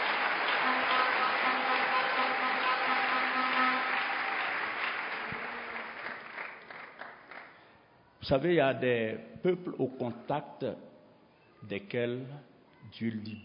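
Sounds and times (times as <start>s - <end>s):
audience cheering: 0.0s - 6.8s
audience at a speech applauding: 0.0s - 7.6s
speech: 8.3s - 10.9s, 11.6s - 13.4s.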